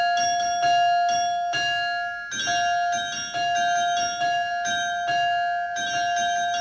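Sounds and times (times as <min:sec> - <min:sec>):
bells ringing in a steady loud peal: 0:00.0 - 0:06.5.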